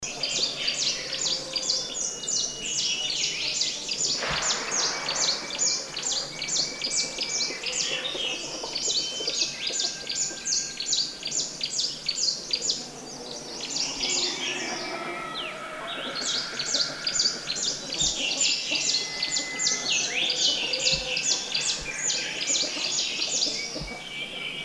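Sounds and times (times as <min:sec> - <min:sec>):
Chinese leaf warbler Phylloscopus yunnanensis singing: 0:00.0 - 0:24.6.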